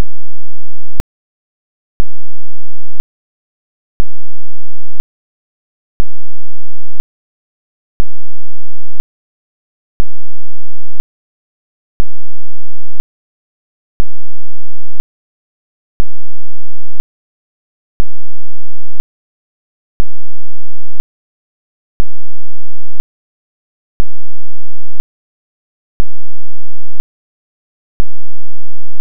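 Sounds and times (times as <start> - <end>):
fully clipped square wave tone with DC offset: 0.0 - 1.0, 2.0 - 3.0, 4.0 - 5.0, 6.0 - 7.0, 8.0 - 9.0, 10.0 - 11.0, 12.0 - 13.0, 14.0 - 15.0, 16.0 - 17.0, 18.0 - 19.0, 20.0 - 21.0, 22.0 - 23.0, 24.0 - 25.0, 26.0 - 27.0, 28.0 - 29.0.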